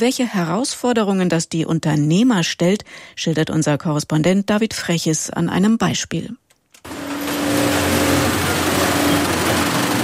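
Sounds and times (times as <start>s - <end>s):
speech: 0.0s - 6.4s
sewing machine stitching protective workwear: 6.8s - 10.0s.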